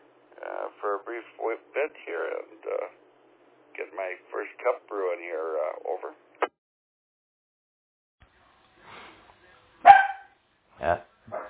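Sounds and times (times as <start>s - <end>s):
speech: 1.2s - 3.1s, 3.8s - 6.2s
dog barking: 9.8s - 10.3s.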